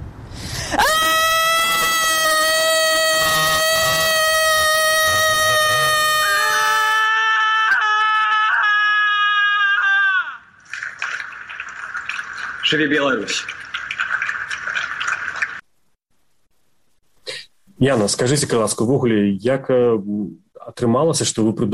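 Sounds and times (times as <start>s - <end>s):
noise: 0.0s - 21.7s
high-pitched scream of protest: 0.6s - 10.5s
speech: 12.7s - 13.6s, 17.8s - 21.7s.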